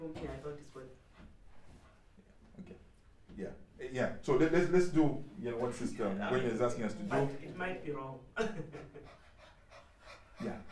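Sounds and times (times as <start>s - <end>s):
speech: 3.4s - 9.2s
person imitating a dog panting: 9.0s - 10.7s.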